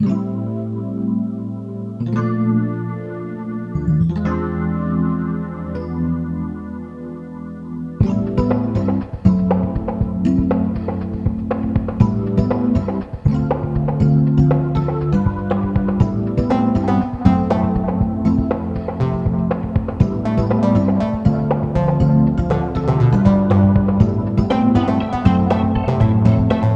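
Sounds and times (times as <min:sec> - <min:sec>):
electronic piano: 0:00.0 - 0:26.7
layered vocals: 0:11.0 - 0:26.7.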